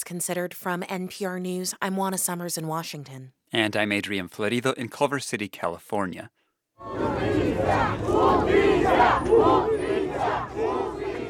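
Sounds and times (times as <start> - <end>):
speech: 0.0 - 9.8
protesters chanting in unison calling for justice: 6.8 - 11.2.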